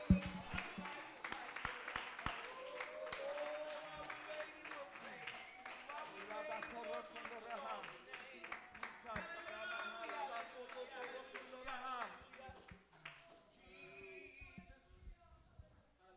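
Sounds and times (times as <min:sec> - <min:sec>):
audience clapping at a worship service: 0:00.0 - 0:13.4.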